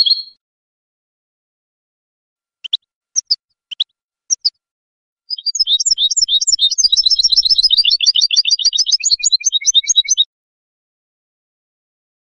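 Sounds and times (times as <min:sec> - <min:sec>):
European goldfinch song with call notes and jangling twittered notes: 0:00.0 - 0:00.4, 0:02.6 - 0:04.6, 0:05.3 - 0:10.3.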